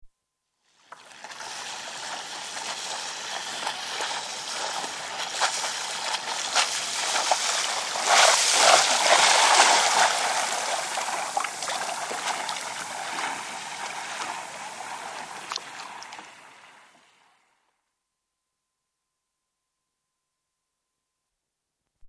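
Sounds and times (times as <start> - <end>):
windsurfing board passing: 1.4 - 17.2.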